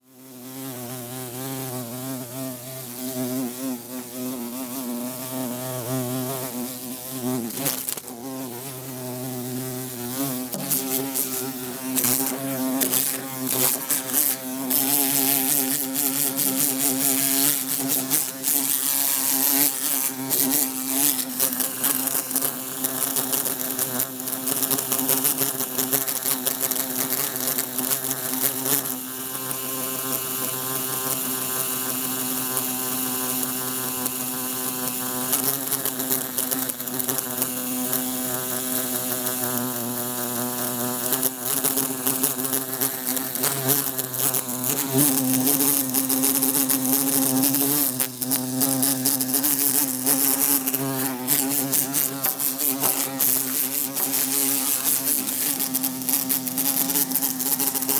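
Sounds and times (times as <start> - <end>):
bumblebee trying to escape through closed window: 0.2 - 57.9.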